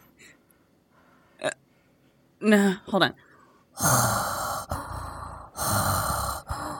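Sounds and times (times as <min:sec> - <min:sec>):
speech: 0:02.5 - 0:03.3
person mimicking heavy raspy breathing through a mask: 0:03.8 - 0:06.7.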